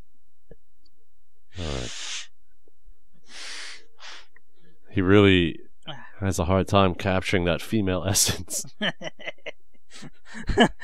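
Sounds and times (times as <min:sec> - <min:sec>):
person blowing nose: 0:03.3 - 0:04.2
speech: 0:05.0 - 0:09.4, 0:10.0 - 0:10.8
laughter: 0:08.2 - 0:10.8.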